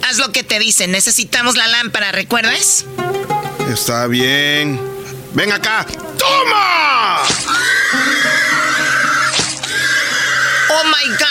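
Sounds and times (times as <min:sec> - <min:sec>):
speech: 0:00.2 - 0:08.4, 0:10.8 - 0:11.2
pig squealing as it is stabbed with a knife in Qatar: 0:06.2 - 0:11.2.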